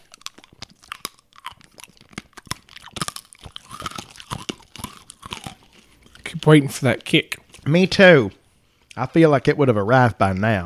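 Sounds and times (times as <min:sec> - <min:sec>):
cherry candy cane being chewed: 0:00.0 - 0:07.8
speech: 0:06.4 - 0:08.4, 0:09.0 - 0:10.6.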